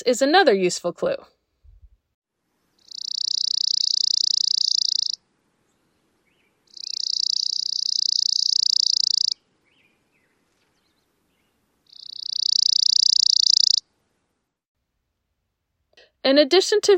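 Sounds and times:
speech: 0.0 - 1.4, 16.2 - 16.9
chipping sparrow trilling: 2.8 - 5.2, 6.3 - 10.3, 11.9 - 13.8.

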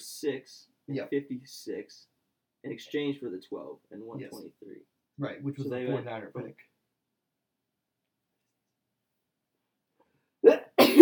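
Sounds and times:
speech: 0.2 - 6.7
person sneezing: 10.4 - 10.9.

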